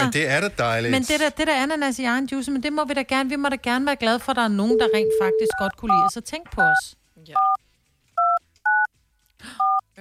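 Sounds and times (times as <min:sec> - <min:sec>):
speech: 0:00.0 - 0:07.6
telephone keypad dual-tone beeps dialing a number: 0:04.7 - 0:06.8.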